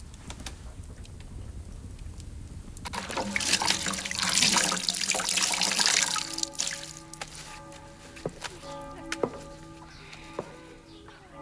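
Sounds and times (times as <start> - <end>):
water dripping: 0.0 - 11.2
water splashing and trickling: 2.2 - 11.1
wet cloth being wrung out by hand: 2.8 - 9.5.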